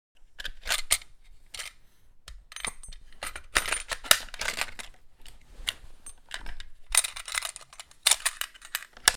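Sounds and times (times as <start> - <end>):
sniper rifle handling foley movement: 2.5 - 9.1.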